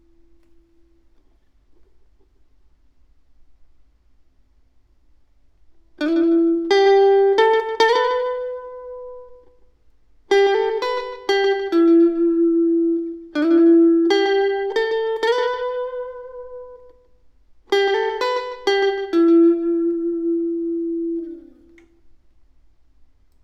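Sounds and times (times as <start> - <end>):
electric guitar: 5.9 - 9.7, 10.3 - 22.1.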